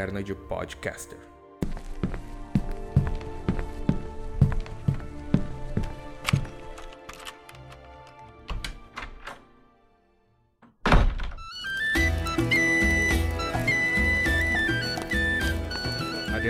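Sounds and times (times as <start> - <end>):
speech: 0.0 - 1.3
lively music: 0.0 - 10.1, 11.4 - 16.4
small wooden tavern door opening thunk: 8.5 - 9.5, 10.6 - 11.9.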